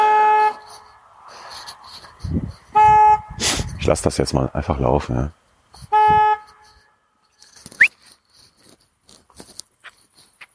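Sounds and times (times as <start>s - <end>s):
car horn honks: 2.8s - 3.4s, 5.9s - 6.7s
speech: 3.9s - 5.4s.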